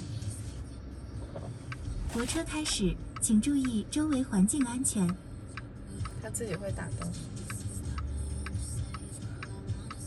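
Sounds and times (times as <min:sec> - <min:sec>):
automatic parking scene sounds: 0:00.0 - 0:10.0.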